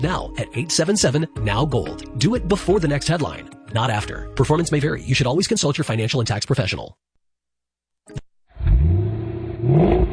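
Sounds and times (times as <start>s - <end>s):
speech: 0.0s - 7.1s
1970 Cuda AAR muscle car engine revving: 8.6s - 10.1s.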